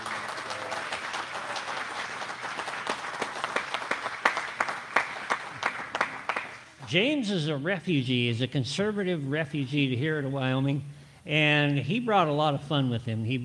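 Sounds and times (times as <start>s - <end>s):
roomful of people applauding: 0.0s - 6.8s
speech: 6.9s - 13.4s.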